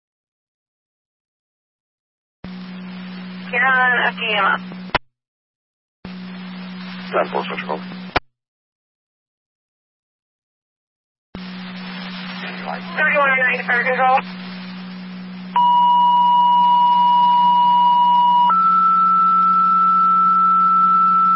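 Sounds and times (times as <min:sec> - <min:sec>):
constant hum: 0:02.4 - 0:05.0, 0:06.1 - 0:08.2, 0:11.4 - 0:21.3
radio static: 0:02.5 - 0:05.0, 0:06.1 - 0:08.2, 0:11.4 - 0:15.6
speech: 0:03.5 - 0:04.8, 0:07.1 - 0:08.0, 0:12.9 - 0:14.4
short garbled radio burst: 0:07.1 - 0:07.8, 0:12.4 - 0:14.2.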